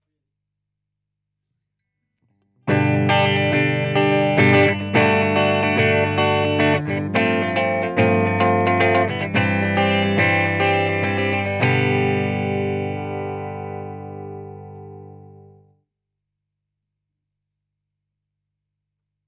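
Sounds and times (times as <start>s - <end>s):
clean bright EL34 valve amplifier tone: 2.7s - 15.8s.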